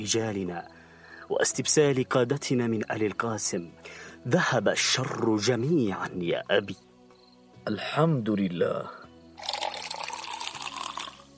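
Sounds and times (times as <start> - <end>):
speech: 0.0 - 6.8, 7.6 - 9.0
water pouring into a glass: 9.4 - 11.3.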